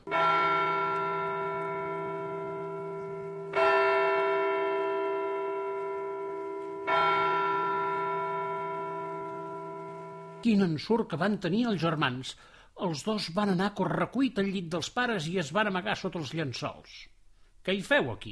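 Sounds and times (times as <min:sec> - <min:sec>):
muffled church bell tolling slowly at midnight: 0:00.0 - 0:10.5
speech: 0:10.4 - 0:18.3.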